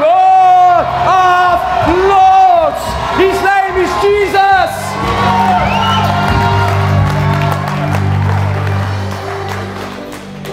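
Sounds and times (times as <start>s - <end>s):
whoops and shouts: 0.0s - 7.6s
large crowd screaming and cheering: 0.0s - 10.5s.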